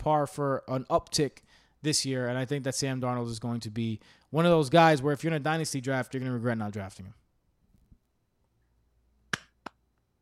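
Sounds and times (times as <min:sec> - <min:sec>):
speech: 0:00.0 - 0:07.2
sharp hand claps: 0:09.3 - 0:09.8.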